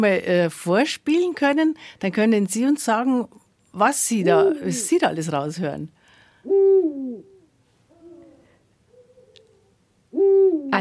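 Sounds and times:
speech: 0.0 - 7.3
male Eurasian eagle-owl hooting its two-syllable call: 6.4 - 10.8.

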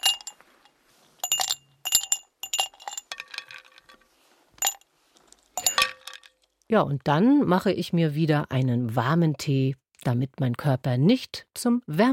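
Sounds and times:
ice cubes clinking in a glass holding a drink: 0.0 - 0.4, 1.2 - 4.0, 4.6 - 4.8, 5.6 - 6.5
speech: 6.7 - 12.1.

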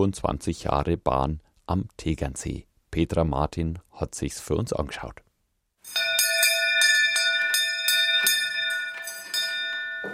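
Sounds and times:
speech: 0.0 - 5.2
old conductor's hand bell ringing: 5.9 - 10.1.

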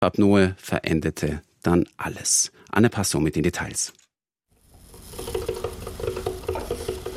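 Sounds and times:
speech: 0.0 - 4.0
coffee machine running with a steady hiss: 5.1 - 7.1.

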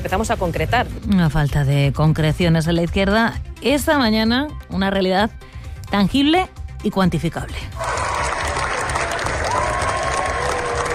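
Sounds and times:
speech: 0.0 - 7.9
large crowd applauding in a standing ovation at a film festival: 7.8 - 10.9.

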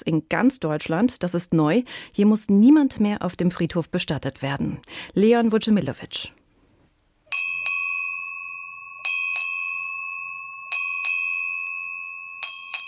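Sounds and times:
speech: 0.0 - 6.4
ship's bell on a river burial ship in Rhineland-Palatinate: 7.3 - 12.8.

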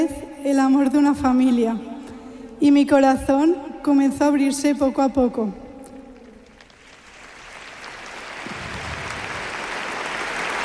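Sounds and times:
speech: 0.4 - 1.9, 2.6 - 5.6
audience applause: 6.6 - 10.6.

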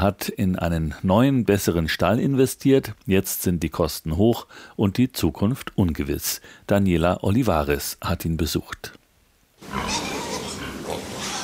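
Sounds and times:
speech: 0.0 - 9.0, 9.6 - 10.1
pigs and piglets grunting in a pig barn: 9.6 - 11.4.

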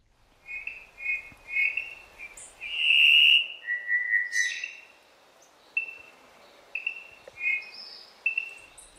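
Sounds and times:
Cuban solitaire (Myadestes elisabeth) singing: 0.5 - 4.8, 6.8 - 8.7.

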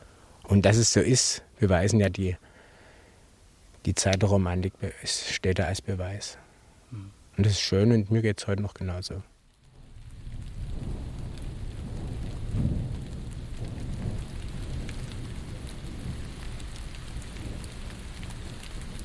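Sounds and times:
steady rain: 0.0 - 19.0
speech: 0.5 - 2.5, 3.8 - 9.3
thunder: 9.7 - 19.0.

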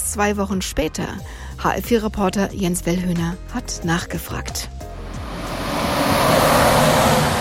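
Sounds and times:
speech: 0.1 - 4.8
steady loud broadband roar: 5.0 - 7.4.

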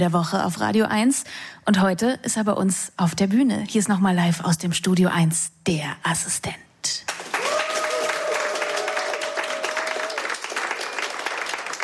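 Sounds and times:
speech: 0.0 - 7.0
studio audience applause: 7.1 - 11.8.

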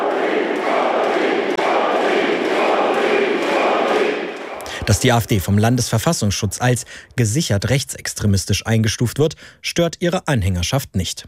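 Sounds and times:
several thousand people cheering at a party campaign-launch rally in Magdeburg: 0.0 - 5.8
speech: 4.9 - 11.2.

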